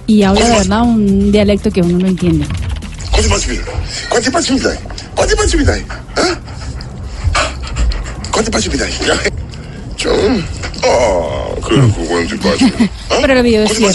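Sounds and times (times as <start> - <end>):
speech: 0.1 - 2.6, 3.2 - 6.6, 8.4 - 9.3, 10.0 - 13.9
dog panting while owner plays with it: 5.2 - 9.0
laughter: 12.4 - 13.0.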